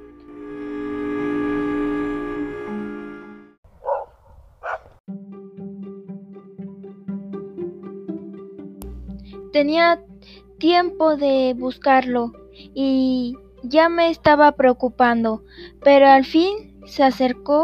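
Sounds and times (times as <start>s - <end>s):
soft musical notes: 0.0s - 3.6s, 5.1s - 17.6s
dog barking: 3.8s - 5.0s
speech: 9.5s - 17.6s.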